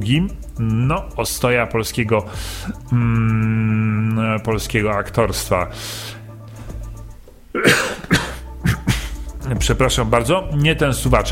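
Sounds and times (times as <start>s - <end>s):
speech: 0.0s - 6.2s, 9.5s - 11.3s
man coughing and clearing his dry throat: 7.5s - 9.3s.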